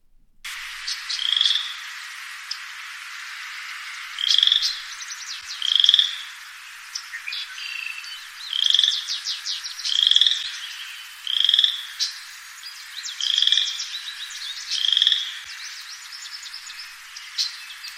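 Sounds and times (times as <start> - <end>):
hum of other calling frogs: 0.5 - 17.9
chorus frog giving raspy trills: 0.7 - 1.9, 3.9 - 6.4, 7.6 - 9.1, 9.9 - 10.4, 11.2 - 11.9, 14.8 - 15.4.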